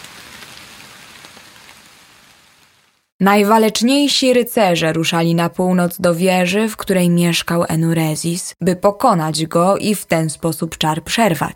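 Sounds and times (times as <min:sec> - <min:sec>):
heavy rain striking a surface: 0:00.0 - 0:03.1
speech: 0:03.2 - 0:11.5.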